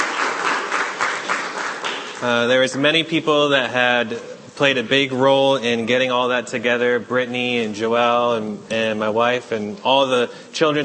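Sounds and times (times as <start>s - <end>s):
church audience applause: 0.0s - 2.5s
speech: 2.2s - 10.8s.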